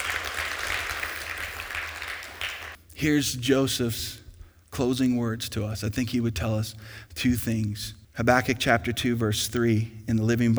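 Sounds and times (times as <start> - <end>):
room full of people applauding: 0.0 - 2.8
speech: 3.0 - 4.2, 4.8 - 10.5.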